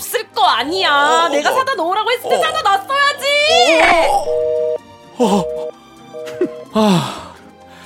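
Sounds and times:
speech: 0.4 - 4.6, 5.2 - 7.2
baby whining and crying: 0.9 - 2.8, 3.4 - 4.5
steady electronic tone: 3.8 - 4.8, 5.4 - 6.7.

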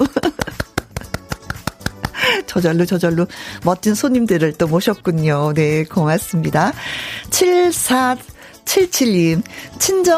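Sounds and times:
hands clapping: 0.2 - 2.2
speech: 2.5 - 10.1.

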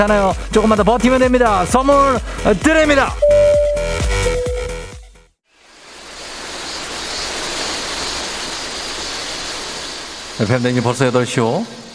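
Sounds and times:
speech: 0.0 - 3.2, 10.4 - 11.8
short musical phrase: 3.2 - 5.0
high cicada-like buzz: 5.8 - 10.4.

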